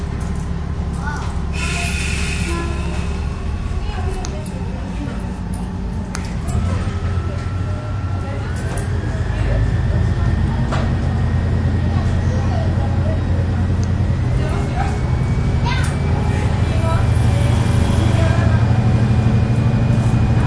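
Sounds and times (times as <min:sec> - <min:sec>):
local passenger train carriage rumbling in motion: 0:00.0 - 0:20.4.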